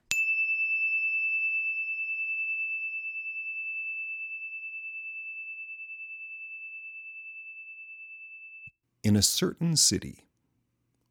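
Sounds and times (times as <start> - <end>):
single bright bell ding with a pure ringing tone: 0.1 - 8.7
speech: 9.1 - 10.3.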